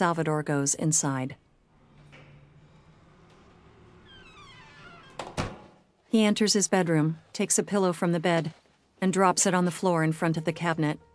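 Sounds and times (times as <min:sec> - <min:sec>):
speech: 0:00.0 - 0:01.5, 0:06.1 - 0:11.1
elevator door thudding shut into the frame: 0:04.2 - 0:05.8.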